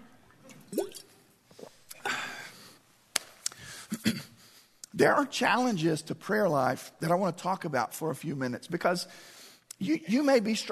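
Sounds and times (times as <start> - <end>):
person sipping and gulping water: 0.4 - 2.4
speech: 5.0 - 10.6.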